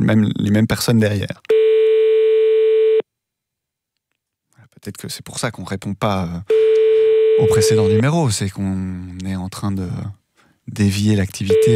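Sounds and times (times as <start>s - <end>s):
speech: 0.0s - 1.7s, 4.8s - 6.8s, 7.4s - 11.7s
telephone ringback tone while calling a landline number: 1.5s - 3.0s, 6.5s - 8.0s, 11.5s - 11.7s.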